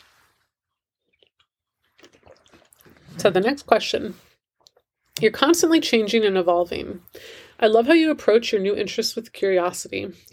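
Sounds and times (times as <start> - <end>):
person sipping and swallowing water: 1.0 - 5.2
speech: 3.2 - 4.3, 5.2 - 10.3.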